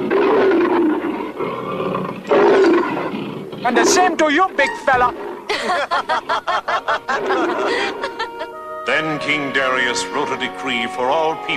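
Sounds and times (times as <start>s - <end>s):
lion roaring: 0.0s - 5.5s, 7.1s - 8.2s
speech: 3.6s - 11.5s
laughter: 5.5s - 8.6s.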